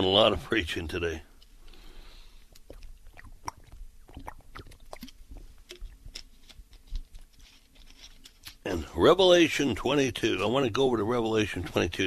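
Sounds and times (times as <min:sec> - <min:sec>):
speech: 0:00.0 - 0:01.3, 0:08.7 - 0:12.0
person sipping water: 0:01.6 - 0:06.3
person swallowing water: 0:02.4 - 0:06.0.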